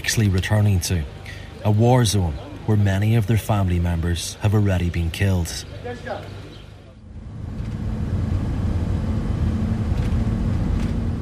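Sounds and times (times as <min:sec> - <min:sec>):
speech: 0:00.1 - 0:06.4
vehicle driving along a road past queued aid trucks: 0:06.3 - 0:11.2.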